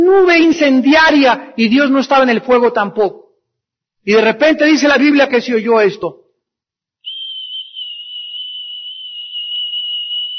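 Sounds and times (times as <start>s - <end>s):
speech: 0.2s - 3.2s, 4.1s - 6.2s
soft gentle whistle at one steady high pitch: 7.1s - 10.3s.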